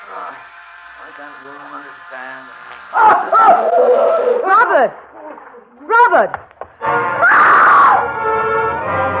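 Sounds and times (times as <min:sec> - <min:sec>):
speech: 0:00.4 - 0:09.1
woman screaming and wailing: 0:03.0 - 0:04.9, 0:07.2 - 0:08.0.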